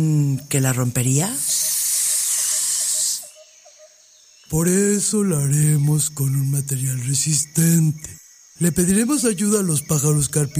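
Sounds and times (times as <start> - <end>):
speech: 0.0 - 1.6, 4.5 - 10.5
snake hissing: 1.2 - 3.8.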